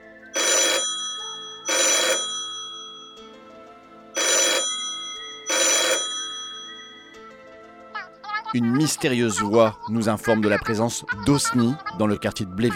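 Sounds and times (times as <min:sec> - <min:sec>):
telephone ringing: 0:00.4 - 0:07.5
speech: 0:08.5 - 0:12.7.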